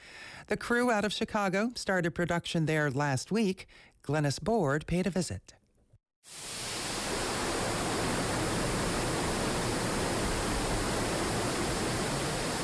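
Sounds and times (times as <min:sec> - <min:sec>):
speech: 0:00.5 - 0:05.6, 0:06.2 - 0:06.6
rushing waterfall at Falling Water in southwestern Pennsylvania: 0:06.3 - 0:12.6.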